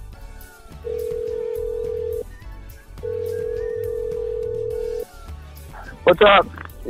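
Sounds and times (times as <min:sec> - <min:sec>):
electronic phone ringback tones in a car on the highway: 0:00.9 - 0:02.3, 0:03.0 - 0:05.0
speech: 0:06.1 - 0:06.8.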